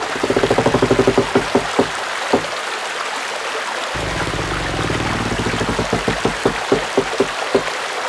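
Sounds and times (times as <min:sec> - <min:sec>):
water wheel turning: 0:00.0 - 0:02.7, 0:04.0 - 0:07.9.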